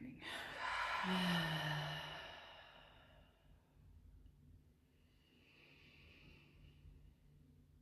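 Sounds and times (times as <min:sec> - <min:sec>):
deep breath with soft voiced sigh: 0:00.2 - 0:03.3.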